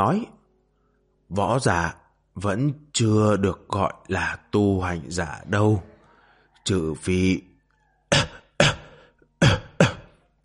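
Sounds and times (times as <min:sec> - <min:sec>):
speech: 0:00.0 - 0:00.4, 0:01.3 - 0:05.9, 0:06.6 - 0:07.5
old man's violent dry coughing fit: 0:08.1 - 0:10.2.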